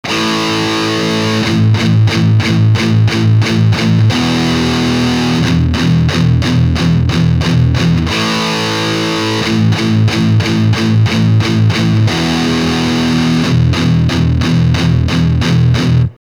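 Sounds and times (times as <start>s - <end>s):
palm muted guitar: 0.0s - 16.2s.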